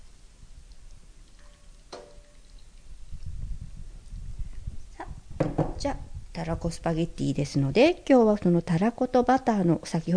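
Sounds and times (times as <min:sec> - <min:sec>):
pasta water draining from colander into pot: 0:00.5 - 0:04.4
speech: 0:05.8 - 0:10.1.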